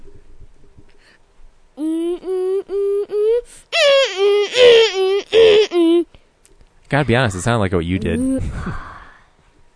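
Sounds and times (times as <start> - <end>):
child imitating a creature's siren-like wail: 1.8 - 6.0
speech: 6.9 - 8.9.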